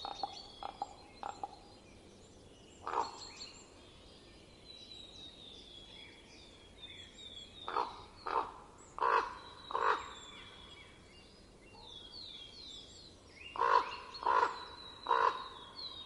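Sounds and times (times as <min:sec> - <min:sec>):
common raven giving harsh, hoarse croaks in winter in Estonia: 0:00.0 - 0:01.6, 0:02.8 - 0:03.2, 0:07.7 - 0:10.2, 0:13.6 - 0:16.0.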